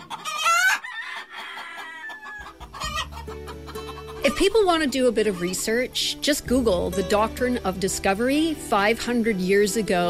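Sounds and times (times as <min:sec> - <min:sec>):
chicken squawking: 0:00.0 - 0:05.8
chickens clucking: 0:00.0 - 0:07.8
speech: 0:04.2 - 0:10.0.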